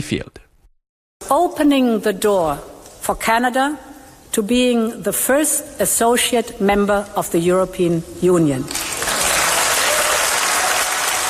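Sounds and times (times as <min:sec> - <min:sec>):
speech: 0:00.0 - 0:00.4, 0:01.3 - 0:09.0
standing ovation applause from European parliament members: 0:08.7 - 0:11.2.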